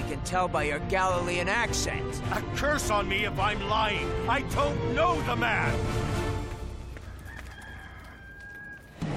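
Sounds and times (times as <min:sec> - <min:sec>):
speech: 0:00.2 - 0:06.2
rooster crowing: 0:06.9 - 0:09.0.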